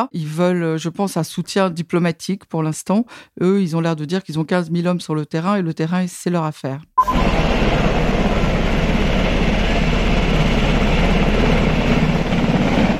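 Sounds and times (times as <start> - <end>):
speech: 0.0 - 7.9
helicopter flying overhead at the Polish border at Kuznica: 7.1 - 12.9.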